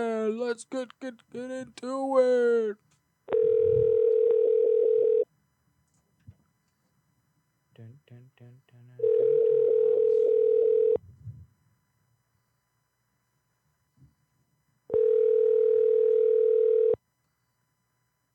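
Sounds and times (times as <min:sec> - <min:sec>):
speech: 0:00.0 - 0:02.9, 0:07.8 - 0:09.2
telephone line tone while placing a call: 0:03.3 - 0:05.2, 0:09.0 - 0:11.0, 0:14.9 - 0:17.0.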